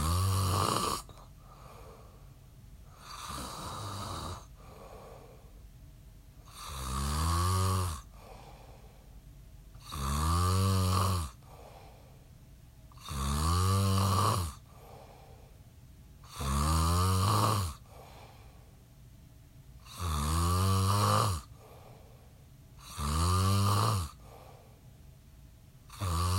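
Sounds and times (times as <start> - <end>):
person snoring: 0.0 - 2.2, 2.9 - 5.5, 6.4 - 9.0, 9.8 - 12.0, 13.0 - 15.4, 16.2 - 18.5, 19.8 - 22.0, 22.8 - 24.7, 25.9 - 26.3
quiet breathing: 0.0 - 6.8, 7.6 - 10.0, 11.1 - 13.2, 14.1 - 16.4, 17.6 - 20.0, 21.4 - 23.0, 23.9 - 25.2.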